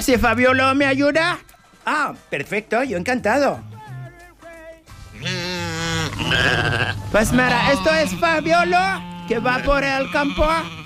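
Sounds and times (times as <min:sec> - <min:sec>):
speech: 0:00.0 - 0:03.7, 0:06.2 - 0:10.8
sheep bleating in a field: 0:05.2 - 0:10.8.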